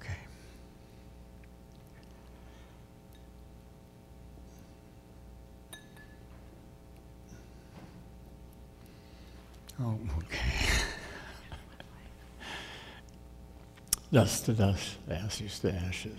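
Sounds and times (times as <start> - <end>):
steady low rumbling hum: 0.0 - 16.1
glass set down with a ringing clink: 5.7 - 6.5
speech: 9.8 - 10.7, 14.1 - 16.1.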